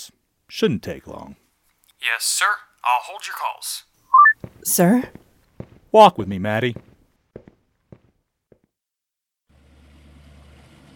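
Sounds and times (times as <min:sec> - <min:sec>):
speech: 0:00.0 - 0:01.4, 0:02.0 - 0:05.2, 0:05.9 - 0:06.9
sharp footsteps: 0:04.2 - 0:08.8.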